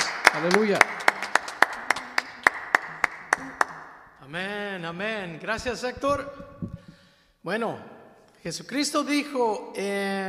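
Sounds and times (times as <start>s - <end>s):
congregation clapping in unison: 0.0s - 4.0s
speech: 0.4s - 1.1s, 4.3s - 6.4s, 7.4s - 10.2s.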